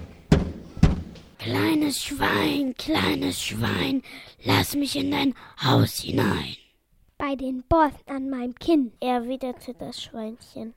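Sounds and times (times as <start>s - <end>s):
heavy knocking on a door: 0.0s - 1.4s
speech: 1.4s - 6.6s, 7.2s - 10.7s.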